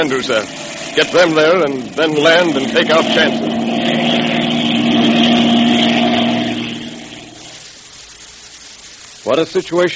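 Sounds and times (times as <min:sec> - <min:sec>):
speech: 0:00.0 - 0:04.0, 0:09.3 - 0:09.9
engine of a circling plane droning: 0:00.0 - 0:07.6.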